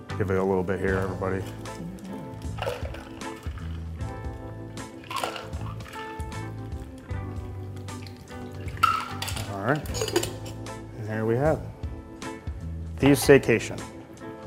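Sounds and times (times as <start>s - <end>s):
speech: 0.2s - 1.9s, 9.6s - 10.3s, 11.1s - 11.7s, 13.0s - 13.9s
blueberry cocktail double strained into a glass through a fine strainer: 2.4s - 4.0s, 5.0s - 6.5s, 7.8s - 9.6s.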